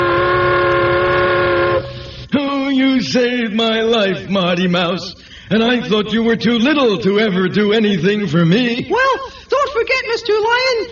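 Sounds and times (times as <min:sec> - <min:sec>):
steamboat-style whistle: 0:00.0 - 0:02.2
speech: 0:03.1 - 0:10.9.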